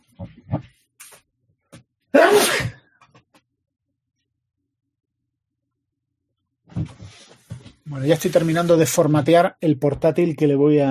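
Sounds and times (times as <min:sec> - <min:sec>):
sneeze: 0:02.2 - 0:02.8
speech: 0:08.0 - 0:10.8.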